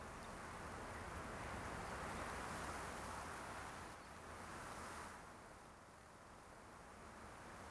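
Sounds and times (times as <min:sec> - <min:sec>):
light wind: 0:00.0 - 0:07.7.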